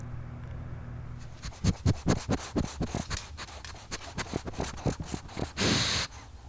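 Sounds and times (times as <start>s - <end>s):
dog scratching: 1.2s - 6.1s.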